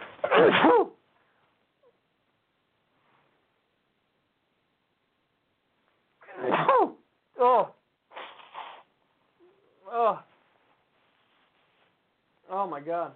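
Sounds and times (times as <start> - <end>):
human sneeze: 0.0 - 1.1, 6.2 - 7.1, 8.1 - 8.9
speech: 0.4 - 0.9, 12.8 - 13.1.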